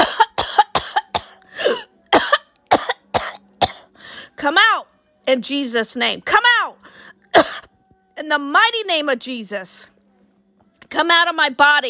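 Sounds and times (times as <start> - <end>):
harsh coughing: 0.0 - 3.9, 7.3 - 7.7
speech: 5.3 - 6.4, 8.3 - 9.9, 10.9 - 11.8.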